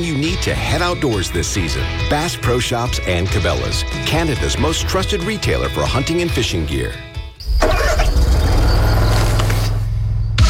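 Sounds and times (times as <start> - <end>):
speech: 0.0 - 7.1
Bobcat zero-turn mower engine starting: 7.6 - 9.8.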